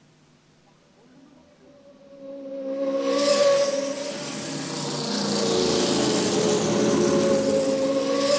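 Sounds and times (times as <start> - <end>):
loud sustained car engine roar: 1.6 - 8.3
cars speeding past: 2.0 - 8.3.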